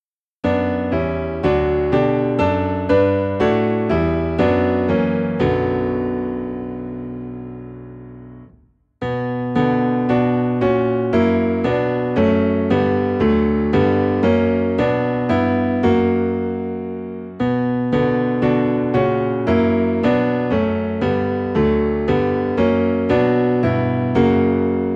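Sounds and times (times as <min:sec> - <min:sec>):
low piano notes in B minor: 0:00.4 - 0:24.9.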